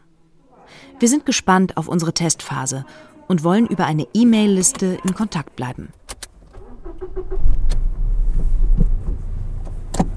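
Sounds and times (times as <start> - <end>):
speech: 1.0 - 6.0
car engine low rumble heard from inside: 6.3 - 10.1.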